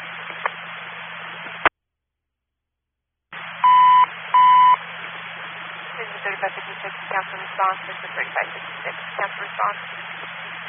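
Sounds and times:
hissy band-limited radio static: 0:03.4 - 0:10.6
electronic fire alarm beeps after a building complex lost power: 0:03.6 - 0:04.8
speech: 0:06.4 - 0:10.5.

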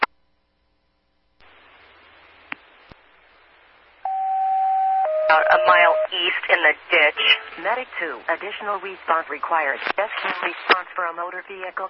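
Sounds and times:
emergency radio hiss: 0:01.4 - 0:04.1, 0:05.3 - 0:11.8
emergency radio dispatch alert tone: 0:04.1 - 0:07.9
speech: 0:05.3 - 0:11.8.

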